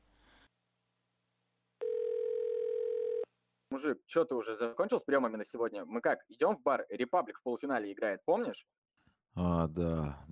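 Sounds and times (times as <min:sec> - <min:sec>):
telephone dial tone: 0:01.8 - 0:03.3
speech: 0:03.7 - 0:10.3.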